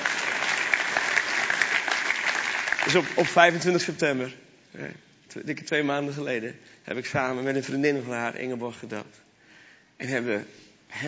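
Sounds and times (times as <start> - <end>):
audience applause: 0.0 - 3.8
speech: 2.8 - 9.2, 10.0 - 11.0.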